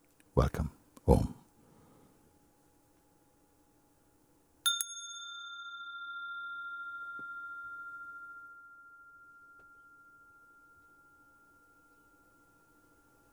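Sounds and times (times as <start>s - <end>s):
speech: 0.4s - 1.3s
bell struck with a double hit ringing a sustained tone: 4.7s - 13.2s.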